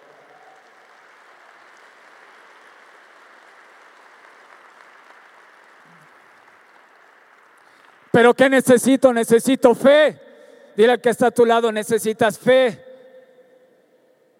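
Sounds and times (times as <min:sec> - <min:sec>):
large audience applauding: 0:00.0 - 0:08.2
speech: 0:08.2 - 0:10.2, 0:10.8 - 0:12.8.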